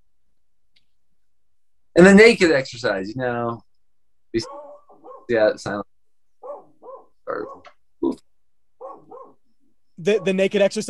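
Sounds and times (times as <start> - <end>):
speech: 2.0 - 3.7, 4.3 - 4.6, 5.3 - 5.9, 10.0 - 10.8
dog barking at a car pulling up a driveway: 4.4 - 5.4, 6.4 - 7.8, 8.8 - 9.4, 10.0 - 10.5.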